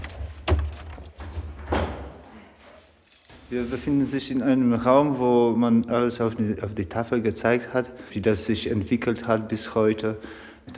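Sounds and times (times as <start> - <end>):
keys jangling and scraping in a lighthouse door lock: 0.0 - 1.3, 3.0 - 3.6
speech: 3.5 - 10.7.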